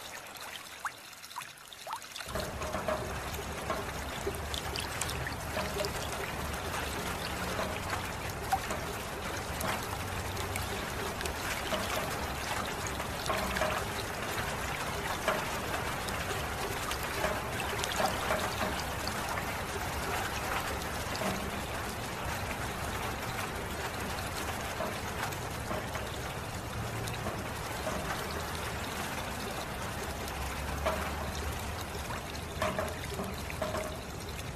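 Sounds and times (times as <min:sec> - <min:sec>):
water: 0:00.0 - 0:34.5.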